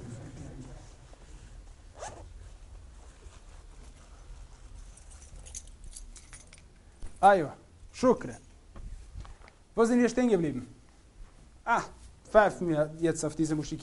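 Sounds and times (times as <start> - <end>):
jacket zipper and fabric handled while looking for keys: 0.0 - 6.3
speech: 7.2 - 8.4, 9.8 - 10.8, 11.7 - 13.8.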